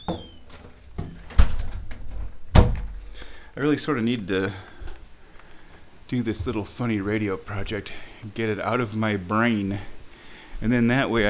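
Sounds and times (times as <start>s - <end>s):
door bumping and thudding against its frame: 0.0s - 1.9s, 2.5s - 3.0s
door creaking with a brief high squeak: 0.0s - 3.0s
speech: 3.6s - 4.7s, 6.1s - 10.0s, 10.6s - 11.2s.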